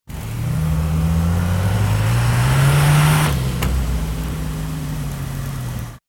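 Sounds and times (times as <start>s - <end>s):
old car driving: 0.1s - 6.0s.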